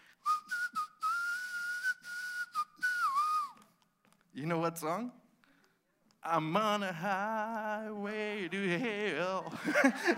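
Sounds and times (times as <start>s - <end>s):
person whistling a tune: 0.0s - 3.8s
speech: 4.4s - 5.2s, 6.2s - 10.1s
laughter: 8.5s - 10.1s.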